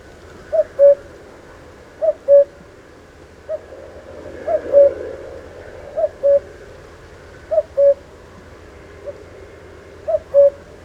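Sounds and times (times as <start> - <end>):
common cuckoo calling: 0.4 - 1.2, 2.0 - 2.6, 4.5 - 5.0, 6.0 - 6.5, 7.5 - 8.1, 10.0 - 10.7
low hum: 2.6 - 10.8.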